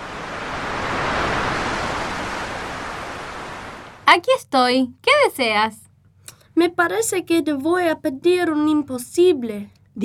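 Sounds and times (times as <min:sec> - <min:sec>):
sea waves at the seashore: 0:00.0 - 0:04.1
speech: 0:04.1 - 0:05.8, 0:06.6 - 0:10.0.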